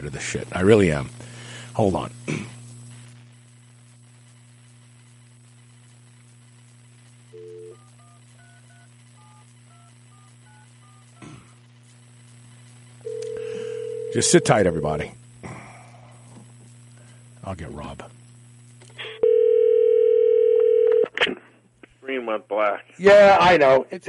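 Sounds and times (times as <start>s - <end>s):
speech: 0.0s - 1.2s, 1.8s - 2.6s, 14.2s - 15.2s, 17.5s - 18.2s, 22.1s - 24.0s
telephone ringing tone on the line: 7.4s - 11.1s, 13.0s - 14.8s, 19.2s - 21.1s
telephone line click: 13.1s - 14.2s, 19.2s - 21.2s
telephone handset dial tone: 13.1s - 14.5s, 19.2s - 21.1s.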